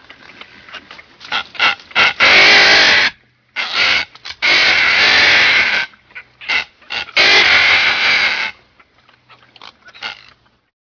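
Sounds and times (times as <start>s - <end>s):
red-footed booby squawking: 1.3s - 8.6s, 9.3s - 10.5s.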